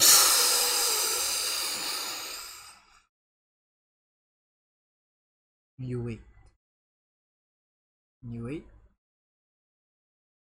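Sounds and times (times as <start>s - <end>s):
voice imitating a spraying hiss: 0.0s - 2.8s
speech: 5.8s - 6.3s, 8.2s - 8.8s.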